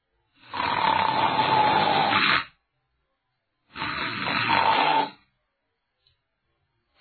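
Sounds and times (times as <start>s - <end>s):
person imitating loud raspy snoring: 0.4s - 2.6s, 3.7s - 5.2s.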